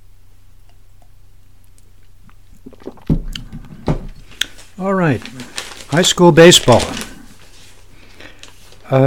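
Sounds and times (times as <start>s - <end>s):
person sipping coffee: 0.6s - 4.8s
slurping and swallowing: 1.7s - 4.6s
speech: 2.7s - 3.2s, 4.8s - 7.1s, 8.9s - 9.0s.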